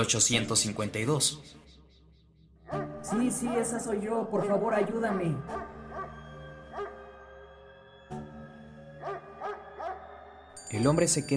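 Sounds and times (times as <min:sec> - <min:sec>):
speech: 0:00.0 - 0:01.7, 0:02.7 - 0:05.7, 0:10.7 - 0:11.3
dog barking: 0:02.7 - 0:03.0, 0:05.5 - 0:07.1, 0:09.0 - 0:10.3.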